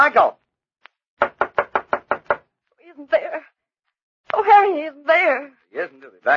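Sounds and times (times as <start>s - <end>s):
speech: 0.0s - 0.4s, 4.4s - 6.3s
firm knocks on the wooden door of a man's home: 1.2s - 2.4s.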